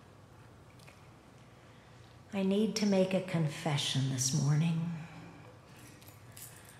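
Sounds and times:
low steady hum: 0:00.0 - 0:06.7
speech: 0:02.3 - 0:05.0
large bunch of keys jangling: 0:05.8 - 0:06.7.

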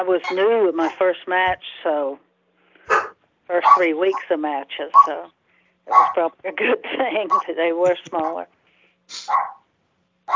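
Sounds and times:
speech: 0:00.0 - 0:02.3, 0:03.5 - 0:09.6
dog barking: 0:00.2 - 0:01.0, 0:02.9 - 0:04.3, 0:04.9 - 0:05.2, 0:05.9 - 0:06.2, 0:08.2 - 0:08.4, 0:09.2 - 0:09.7.

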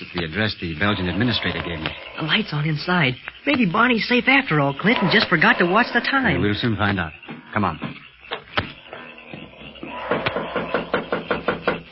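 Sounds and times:
speech: 0:00.1 - 0:08.0
police knocking on the wooden door of a home: 0:10.1 - 0:11.9.

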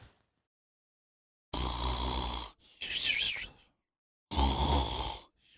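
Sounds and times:
person snoring with rattling inhales and wheezy whistling exhales: 0:01.6 - 0:02.6, 0:04.3 - 0:05.3.

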